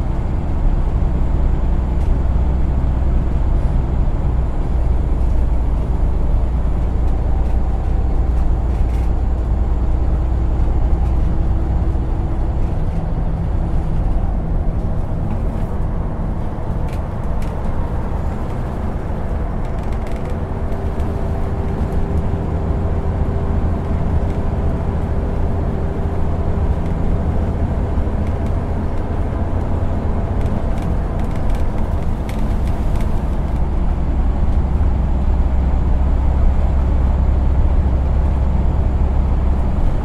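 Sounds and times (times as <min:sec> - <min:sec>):
bus engine rumble heard from inside: 0:00.0 - 0:40.0
small rattles and clicks: 0:07.1 - 0:09.1, 0:16.9 - 0:22.0, 0:30.4 - 0:33.6.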